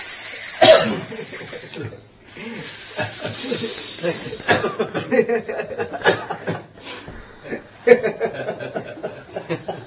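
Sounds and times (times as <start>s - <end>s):
person imitating many venomous snakes hissing: 0.0s - 5.7s, 9.2s - 9.7s
chuckling: 1.0s - 9.8s.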